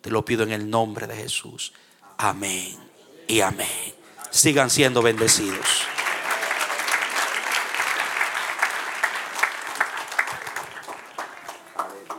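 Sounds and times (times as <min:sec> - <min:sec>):
speech: 0:00.0 - 0:06.0
crowd applauding: 0:04.5 - 0:12.1.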